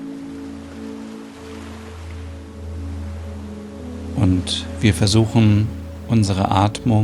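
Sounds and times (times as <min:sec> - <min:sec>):
ocean waves washing onto a sandy beach: 0:00.0 - 0:07.0
low constant hum: 0:02.2 - 0:07.0
speech: 0:04.2 - 0:07.0.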